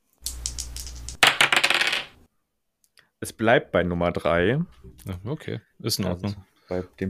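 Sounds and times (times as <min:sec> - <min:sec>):
dice rattling and clattering onto a hard surface: 0:00.2 - 0:02.2
speech: 0:03.2 - 0:07.0.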